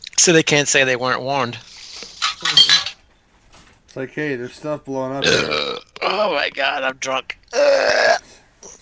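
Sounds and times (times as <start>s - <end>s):
speech: 0.2s - 1.7s, 3.9s - 8.2s
raspy burp after drinking beer: 5.2s - 6.1s, 7.5s - 8.3s.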